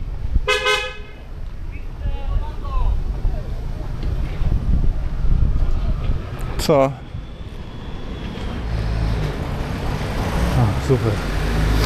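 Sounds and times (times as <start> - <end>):
street traffic rumble: 0.0 - 11.8
wind: 0.0 - 11.8
car horn honking: 0.4 - 1.9
speech: 6.7 - 7.0, 10.9 - 11.4.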